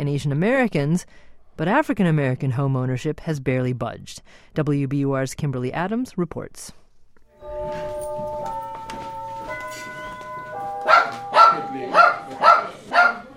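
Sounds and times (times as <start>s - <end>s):
speech: 0.1s - 6.8s
sustained musical tones: 7.3s - 12.9s
dog barking: 10.8s - 13.3s.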